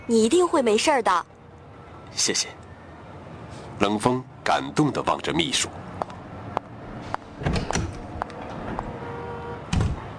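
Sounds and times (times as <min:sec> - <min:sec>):
speech: 0:00.1 - 0:01.3, 0:02.1 - 0:02.6, 0:03.8 - 0:05.9
office door thumping shut: 0:07.4 - 0:08.0, 0:09.7 - 0:10.1.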